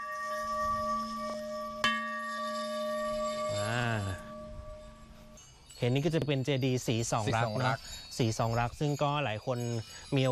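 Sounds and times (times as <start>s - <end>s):
large temple bell being struck: 0.0s - 10.3s
wavering voice-like sound: 3.5s - 4.3s
speech: 5.8s - 10.3s.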